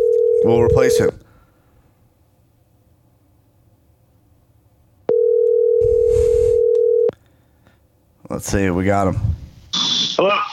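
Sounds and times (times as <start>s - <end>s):
telephone dial tone while placing a call: 0.0s - 0.4s, 5.1s - 7.1s
speech: 0.4s - 1.2s, 8.3s - 9.4s.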